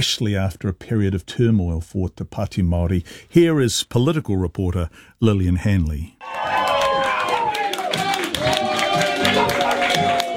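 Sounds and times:
speech: 0:00.0 - 0:06.6
political party supporters cheering and clapping after a by-election win: 0:06.2 - 0:10.3.

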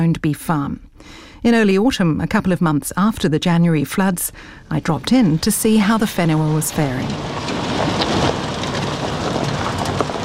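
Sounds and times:
speech: 0:00.0 - 0:08.4
gusty wind on a farm track in Northland New Zealand: 0:04.3 - 0:10.2
drizzling rain on a grey day on the eastern coast of Northland New Zealand: 0:05.0 - 0:10.2.

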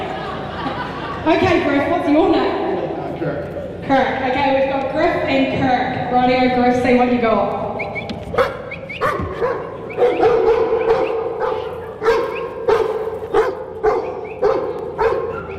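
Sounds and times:
laughter: 0:00.0 - 0:02.2
speech: 0:01.3 - 0:02.6, 0:03.2 - 0:10.1
working dog barking and yipping: 0:08.3 - 0:15.5.

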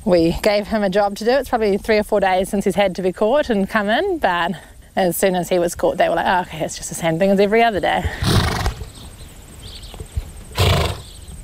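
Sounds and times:
speech: 0:00.0 - 0:08.6
horse whinnying and snorting outdoors: 0:08.2 - 0:08.9, 0:10.5 - 0:11.1.

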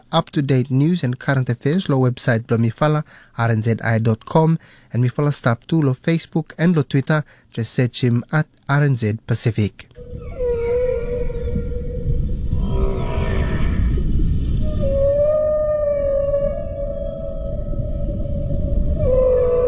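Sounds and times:
speech: 0:00.1 - 0:10.4
low rumble of ocean noise: 0:10.0 - 0:19.6
southern right whale calling underwater: 0:10.0 - 0:19.6.

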